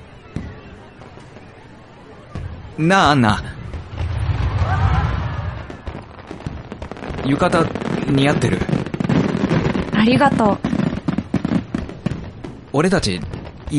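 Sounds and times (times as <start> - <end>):
fireworks banging: 0.0 - 13.7
speech: 2.8 - 3.6, 7.3 - 8.8, 10.0 - 10.7, 12.8 - 13.7
low rumble: 3.6 - 6.1.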